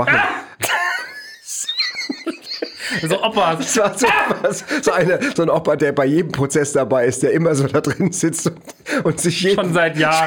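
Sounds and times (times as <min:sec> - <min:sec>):
speech: 0:00.0 - 0:00.3, 0:02.9 - 0:10.2
person coughing: 0:00.0 - 0:01.1, 0:04.0 - 0:04.5
laughter: 0:00.0 - 0:05.6.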